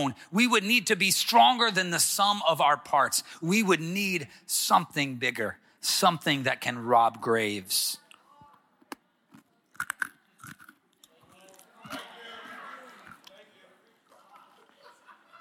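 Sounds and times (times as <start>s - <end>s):
speech: 0.0s - 8.0s
person crunching and chewing food: 8.8s - 12.1s, 13.0s - 13.4s
laughter: 11.8s - 15.3s.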